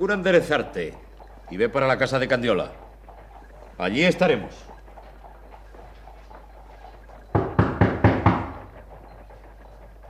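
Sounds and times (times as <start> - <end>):
speech: 0.0 - 2.8, 3.8 - 4.7
firm knocks on a door: 7.3 - 8.7.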